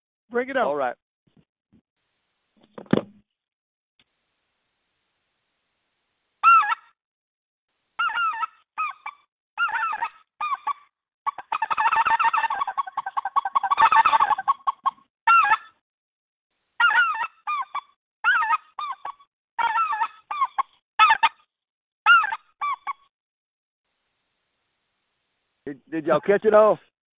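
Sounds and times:
speech: 0.3 - 1.0, 2.8 - 3.2, 25.7 - 26.9
person imitating speckle-belly goose calls with a goose call through a phone: 6.4 - 6.8, 8.0 - 15.7, 16.8 - 21.4, 22.1 - 23.0.

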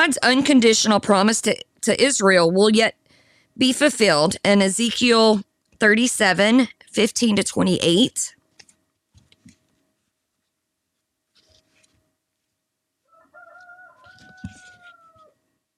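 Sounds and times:
speech: 0.0 - 3.0, 3.6 - 8.4
rustling: 8.5 - 12.7, 14.0 - 15.0
rooster crowing: 13.0 - 15.4.

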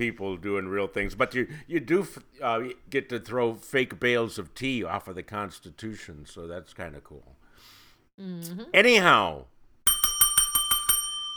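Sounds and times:
speech: 0.0 - 9.5
bright metallic bell ringing to signal game time: 9.9 - 11.3.

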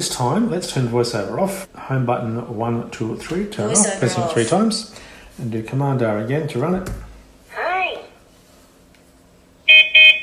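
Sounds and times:
speech: 0.0 - 7.1
toy electronic beeps of two short steady tones: 9.7 - 10.2.

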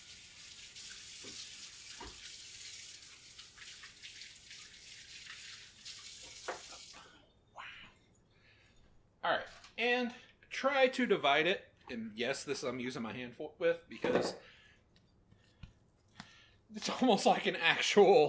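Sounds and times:
water running from a tap while washing an oily hand: 0.0 - 7.2
speech: 9.8 - 14.5, 16.8 - 18.2.

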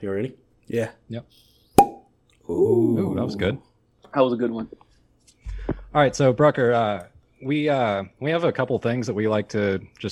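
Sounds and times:
speech: 0.0 - 1.5, 2.5 - 4.8, 5.9 - 10.0
whiskey bottle uncorked with a pop: 1.8 - 2.1.

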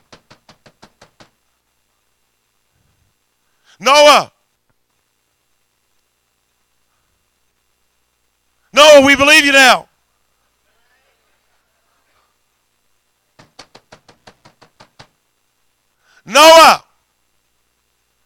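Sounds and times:
sharp knocks on the door of an ark: 0.0 - 1.4, 13.4 - 15.2
speech: 3.8 - 4.3, 9.0 - 9.9, 16.4 - 16.8.

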